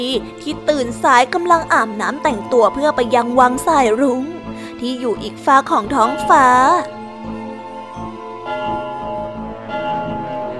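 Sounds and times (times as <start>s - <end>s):
speech: 0.0s - 7.0s
bells ringing: 5.9s - 10.5s.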